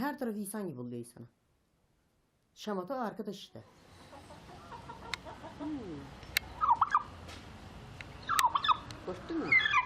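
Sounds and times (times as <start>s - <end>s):
faint outdoor background: 0.0s - 9.8s
speech: 0.1s - 1.4s, 2.6s - 3.8s, 5.6s - 6.2s, 9.1s - 9.7s
geese and ducks honking and squawking: 4.0s - 5.8s, 6.5s - 7.1s, 8.2s - 9.8s.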